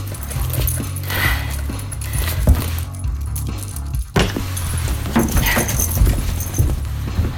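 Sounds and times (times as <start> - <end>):
dog harness buckles jingling: 0.0 - 7.3
handling rustle: 0.0 - 7.3.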